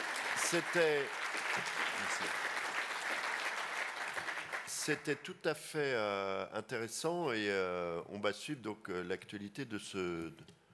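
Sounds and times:
audience applauding: 0:00.0 - 0:05.0
speech: 0:00.5 - 0:02.6, 0:04.8 - 0:10.6.

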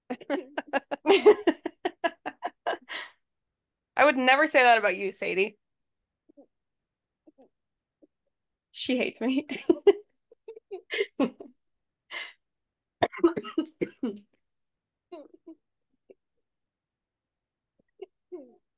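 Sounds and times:
laughter: 0:00.0 - 0:02.9
speech: 0:04.0 - 0:05.6, 0:08.8 - 0:09.9
person coughing and choking on a chip: 0:13.0 - 0:14.3, 0:15.1 - 0:15.6.

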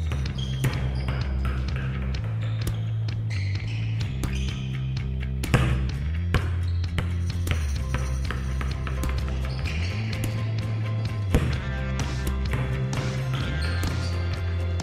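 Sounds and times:
dense steady music bed with heavy low end: 0:00.0 - 0:14.8
sharp volleyball spikes: 0:00.0 - 0:14.8
volleyball bounces: 0:00.0 - 0:14.8.

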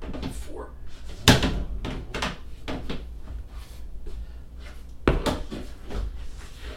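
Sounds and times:
low steady hum: 0:00.0 - 0:06.7
wooden door opening with creaks and rattles: 0:01.1 - 0:03.4.

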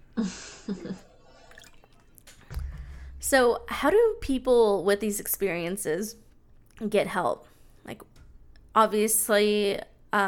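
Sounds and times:
speech: 0:00.2 - 0:01.1, 0:03.3 - 0:06.2, 0:06.8 - 0:08.1, 0:08.8 - 0:10.2
slurping sips of water: 0:01.3 - 0:02.1
soft thump: 0:02.5 - 0:04.6.

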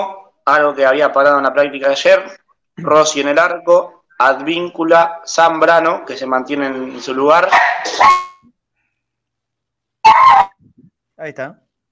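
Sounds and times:
speech: 0:00.0 - 0:08.3, 0:11.2 - 0:11.6
small dog barking: 0:07.5 - 0:08.2.

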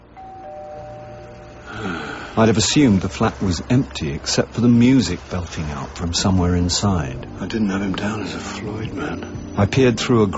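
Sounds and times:
basement flat electric doorbell buzz: 0:00.2 - 0:01.6
speech: 0:01.7 - 0:10.3.

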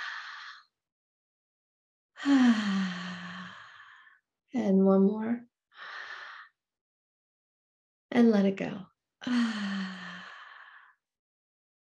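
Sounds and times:
deep belly inhale and exhale through the mouth: 0:00.0 - 0:00.7, 0:02.2 - 0:04.2, 0:05.8 - 0:06.6, 0:09.2 - 0:11.0
speech: 0:04.6 - 0:05.5, 0:08.2 - 0:10.0.

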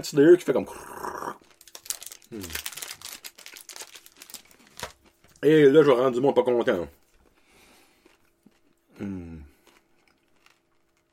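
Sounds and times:
speech: 0:00.0 - 0:01.2, 0:02.3 - 0:02.6, 0:05.4 - 0:07.0
paper Crispy Crunch candy bar wrapper crinkling: 0:01.4 - 0:05.8, 0:10.3 - 0:11.1.

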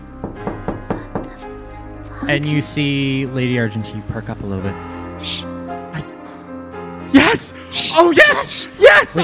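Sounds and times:
knocking on the wooden back door of a lodge: 0:00.2 - 0:01.4
speech: 0:02.3 - 0:05.5, 0:07.3 - 0:09.2.

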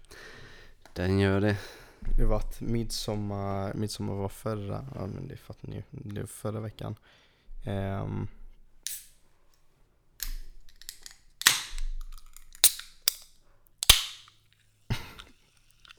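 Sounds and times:
speech: 0:01.0 - 0:08.4
energy drink cans being cracked open: 0:08.9 - 0:09.2, 0:10.2 - 0:15.9.

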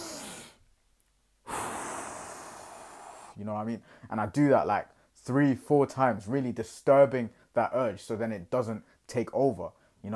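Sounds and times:
person breathing out hard and deep: 0:00.0 - 0:00.6, 0:01.4 - 0:03.4
speech: 0:03.4 - 0:10.1.

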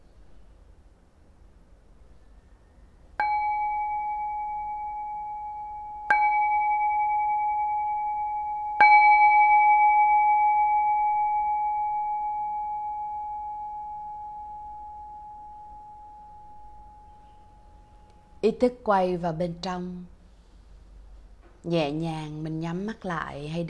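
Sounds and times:
resonant bell struck and sustaining a clear tone: 0:03.2 - 0:18.4
speech: 0:18.5 - 0:20.1, 0:21.6 - 0:23.6.

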